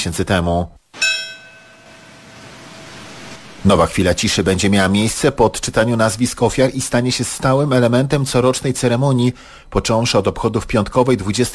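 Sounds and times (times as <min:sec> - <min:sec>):
speech: 0:00.0 - 0:00.8, 0:03.6 - 0:11.5
bell tolling at a memorial ceremony for the September 11 attacks: 0:01.0 - 0:03.6.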